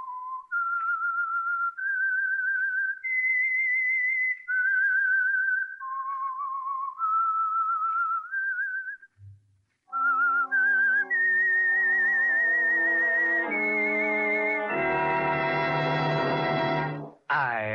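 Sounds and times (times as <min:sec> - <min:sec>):
lone whistler whistling an eerie wavering theme tune: 0:00.0 - 0:09.2, 0:09.9 - 0:15.1
orchestra playing rising chords: 0:12.3 - 0:17.2.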